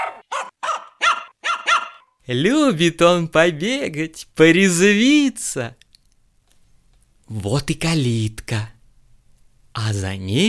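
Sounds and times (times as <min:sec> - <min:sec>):
playful puppy barking happily while running toward a garden gate: 0:00.0 - 0:02.1
speech: 0:02.3 - 0:05.8, 0:07.3 - 0:08.8, 0:09.8 - 0:10.4.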